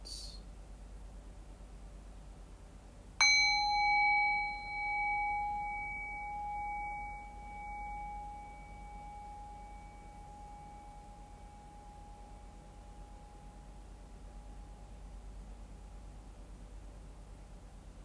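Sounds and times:
faint hiss: 0.0 - 18.0
meditation bell struck and ringing: 3.2 - 15.2.

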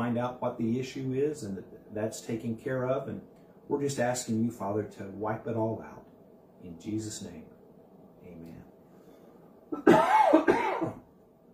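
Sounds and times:
speech: 0.2 - 6.0, 6.6 - 7.5
throat clearing: 9.8 - 11.0
harsh cough: 9.8 - 11.1.

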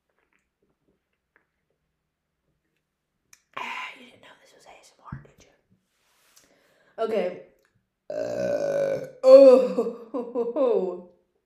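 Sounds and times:
speech: 7.0 - 7.5, 8.1 - 11.1
person burping after drinking diet soda: 8.1 - 10.2.

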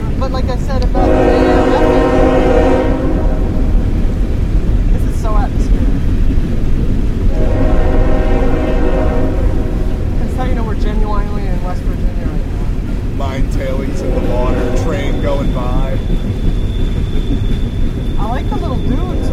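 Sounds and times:
rumble of rolling rail cars: 0.0 - 19.3
speech: 0.3 - 1.2
train horn blasts: 0.9 - 4.0, 7.3 - 11.2, 13.7 - 16.0, 18.6 - 19.3.

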